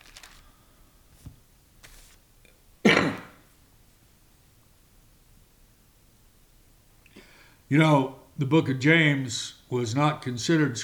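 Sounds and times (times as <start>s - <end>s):
pages of a book being turned: 0.0s - 0.5s, 1.1s - 2.2s
speech: 7.7s - 10.8s.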